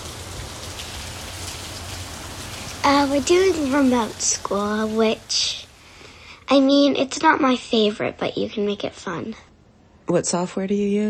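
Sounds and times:
rain falling: 0.0s - 7.5s
speech: 2.8s - 5.6s, 6.5s - 9.5s, 10.1s - 11.0s.

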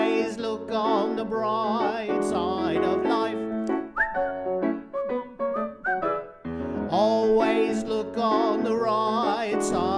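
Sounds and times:
steady musical accompaniment: 0.0s - 9.9s
speech: 0.7s - 3.1s
person whistling a bouncy tune: 3.7s - 4.4s, 5.4s - 6.4s.

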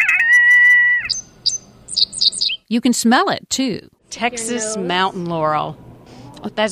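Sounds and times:
high bird chirps: 0.0s - 2.7s
speech: 2.7s - 6.7s.

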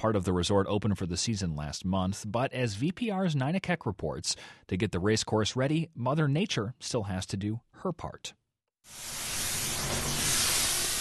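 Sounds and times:
speech: 0.0s - 9.2s
snow guns hissing: 8.9s - 10.9s.

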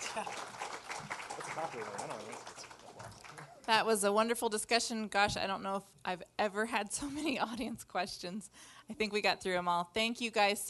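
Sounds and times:
audience applause at the end of a panel discussion: 0.0s - 3.7s
speech: 0.2s - 0.6s, 1.6s - 3.1s, 3.7s - 10.6s.

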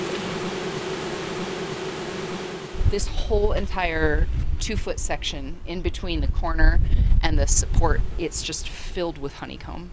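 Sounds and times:
colony of honeybees buzzing behind a wall: 0.0s - 3.4s
speech: 2.9s - 9.9s.

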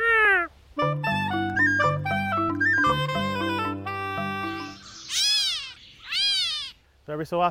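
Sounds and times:
steady melodic gray catbird tones: 0.8s - 6.7s
gray catbird mewing calls: 2.6s - 6.8s
speech: 7.1s - 7.4s.

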